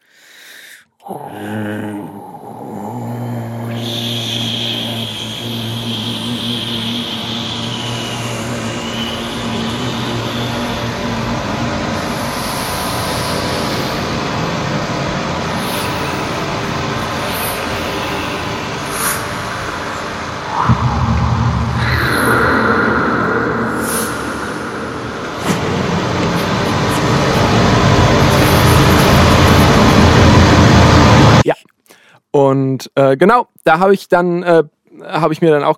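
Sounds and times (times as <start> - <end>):
speech: 1.1 - 3.1, 32.9 - 35.7
droning hum tones: 1.1 - 31.4
shifting higher whines: 1.1 - 31.5
dense layered loud broadband static hiss: 4.1 - 31.6.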